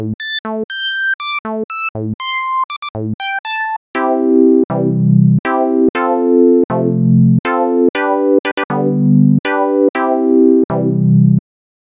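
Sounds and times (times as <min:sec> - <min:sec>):
Synth1 VSTi synthesizer with LPF12 low-pass filter: 0:00.2 - 0:09.4, 0:10.2 - 0:11.4.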